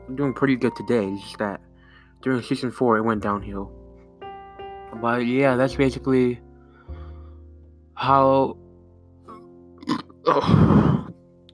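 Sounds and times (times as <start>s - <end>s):
speech: 0.1s - 3.8s, 4.9s - 7.0s, 8.0s - 8.6s, 9.9s - 10.9s
loud drawn-out burp: 9.8s - 11.2s.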